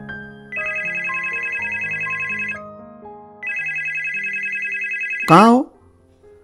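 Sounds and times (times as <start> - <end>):
mobile phone ringtone for incoming call: 0.5 - 2.6, 3.4 - 5.6
speech: 5.3 - 5.7.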